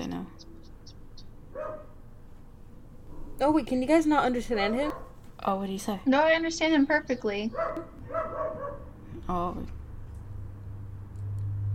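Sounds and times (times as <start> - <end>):
dog barking: 1.5 - 2.0, 4.9 - 5.2, 7.5 - 8.9
speech: 3.4 - 8.0, 9.3 - 9.8.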